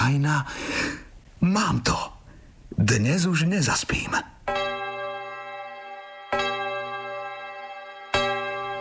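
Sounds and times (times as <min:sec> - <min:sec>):
speech: 0:00.0 - 0:02.1, 0:02.7 - 0:04.4
clock chiming bell-like tones striking midnight: 0:04.5 - 0:08.7.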